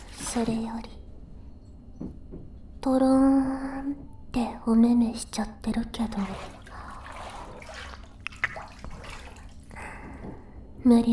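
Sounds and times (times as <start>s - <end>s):
speech: 0.4s - 1.0s, 2.8s - 6.6s, 10.8s - 11.1s
water dripping in a hot bath aboard a train: 6.2s - 9.8s.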